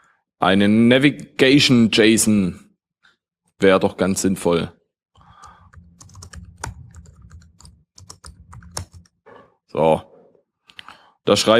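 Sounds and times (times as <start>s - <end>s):
speech: 0.4s - 2.6s, 3.6s - 4.8s, 9.8s - 10.1s, 11.2s - 11.5s
typing on a computer keyboard while writing a code file: 5.4s - 9.2s.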